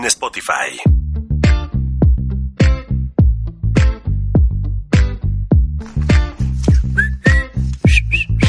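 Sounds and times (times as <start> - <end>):
speech: 0.0 - 1.0
bouncy rhythmic backing: 0.9 - 8.4
person whistling a tune: 6.8 - 8.4.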